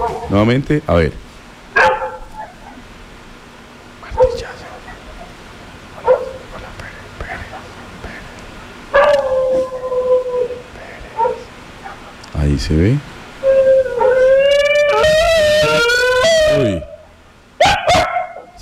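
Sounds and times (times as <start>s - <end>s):
dog barking: 0.0s - 0.3s, 1.8s - 2.8s, 4.2s - 5.4s, 6.0s - 6.5s, 8.9s - 9.7s, 11.2s - 12.1s, 17.6s - 18.6s
dog drawn-out yelp-like cry: 0.0s - 0.3s, 1.8s - 2.9s, 4.1s - 5.4s, 6.0s - 6.5s, 8.9s - 12.1s, 13.4s - 18.6s
speech: 0.3s - 1.2s.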